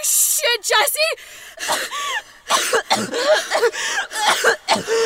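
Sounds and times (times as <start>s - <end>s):
speech: 0.6s - 5.0s
woman choking and gasping for breath: 1.7s - 5.0s.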